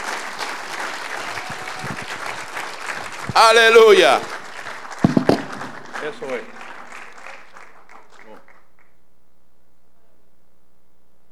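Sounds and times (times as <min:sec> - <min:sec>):
crowd applauding: 0:00.0 - 0:09.0
man shouting: 0:03.4 - 0:04.3
speech: 0:03.4 - 0:04.3, 0:06.0 - 0:06.5.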